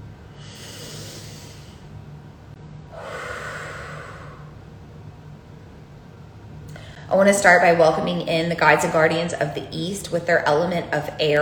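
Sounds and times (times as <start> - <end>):
faint steady hum: 0.0 - 11.4
deep breaths during a virtual full moon meditation circle: 0.3 - 2.0, 2.9 - 4.7, 6.7 - 7.1
speech: 7.1 - 11.4.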